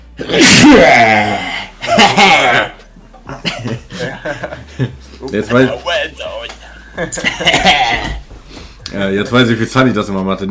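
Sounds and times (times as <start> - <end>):
person sneezing: 0.2 - 1.2
speech: 0.2 - 2.7, 3.4 - 6.2, 7.0 - 8.2, 8.9 - 10.5
laughter: 1.8 - 5.2, 6.8 - 8.2.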